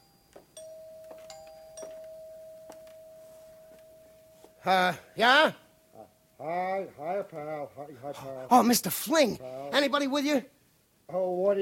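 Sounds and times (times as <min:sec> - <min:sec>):
doorbell ringing ding-dong: 0:00.0 - 0:04.7
low steady hum: 0:00.0 - 0:09.9
speech: 0:04.6 - 0:05.6, 0:06.4 - 0:11.5.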